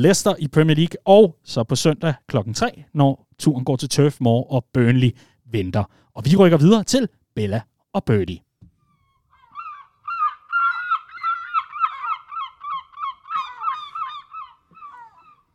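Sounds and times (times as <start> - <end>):
speech: 0.0 - 8.4
flock of seagulls calling at the docks: 8.9 - 15.5.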